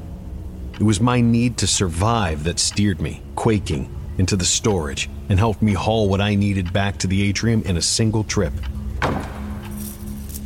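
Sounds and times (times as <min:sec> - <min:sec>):
steady low hum: 0:00.0 - 0:10.4
speech: 0:00.8 - 0:08.9
heavy door slamming shut in a domed atrium: 0:09.0 - 0:09.6.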